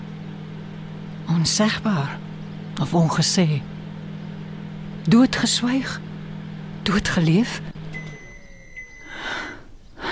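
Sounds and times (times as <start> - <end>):
speech: 1.4 - 3.7, 5.0 - 6.1, 6.9 - 7.7
single bell struck with gong-like tone: 8.0 - 9.2.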